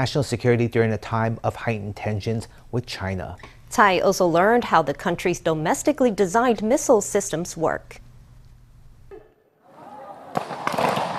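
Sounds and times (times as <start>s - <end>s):
speech: 0.0s - 8.0s
gunfire from soldiers during a live-fire military exercise at a base: 10.3s - 11.1s.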